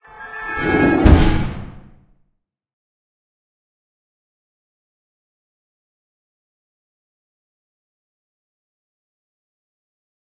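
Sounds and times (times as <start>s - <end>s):
garage door slamming: 0.8s - 1.9s.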